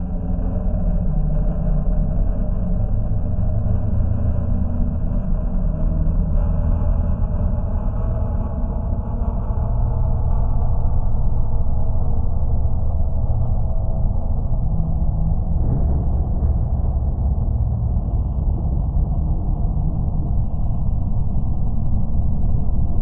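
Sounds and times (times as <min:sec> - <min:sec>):
deep drone: 0:00.0 - 0:23.0.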